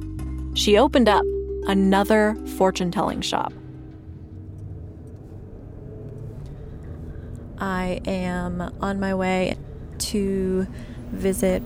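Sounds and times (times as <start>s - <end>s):
speech: 0.6s - 3.6s, 7.6s - 11.6s
traffic rumble from a busy street by boutiques and businesses: 2.0s - 11.6s
car engine droning: 2.1s - 11.6s
vehicles passing on a busy street: 2.1s - 11.6s.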